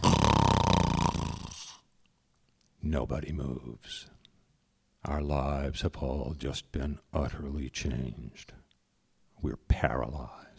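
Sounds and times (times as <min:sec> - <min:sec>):
senior priest snoring: 0:00.0 - 0:01.8
speech: 0:02.9 - 0:04.2, 0:05.0 - 0:08.6, 0:09.4 - 0:10.5.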